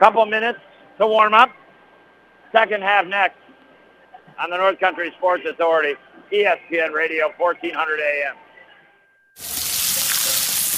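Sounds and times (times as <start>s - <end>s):
speech: 0.0s - 1.6s, 2.5s - 3.4s, 4.4s - 8.4s, 9.4s - 9.6s
hot dogs sizzling on a grill: 9.4s - 10.7s.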